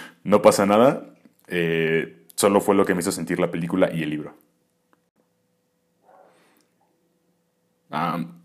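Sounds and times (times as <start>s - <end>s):
speech: 0.2s - 4.4s, 7.9s - 8.4s
dogs barking: 6.0s - 6.4s.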